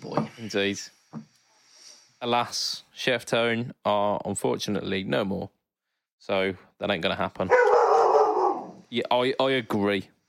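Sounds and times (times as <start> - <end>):
speech: 0.0 - 1.0, 2.2 - 5.6, 6.2 - 7.7, 8.9 - 10.2
dog barking and howling: 7.5 - 8.9.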